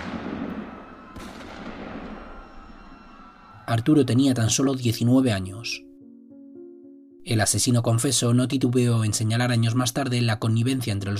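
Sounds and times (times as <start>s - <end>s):
gunshots: 0.0s - 2.4s
speech: 3.7s - 5.9s, 7.2s - 11.1s.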